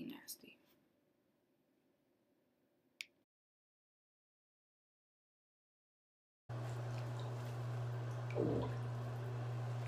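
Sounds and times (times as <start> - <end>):
fart bubbles gurgling through bathwater: 6.5 - 9.8
speech: 8.4 - 8.8.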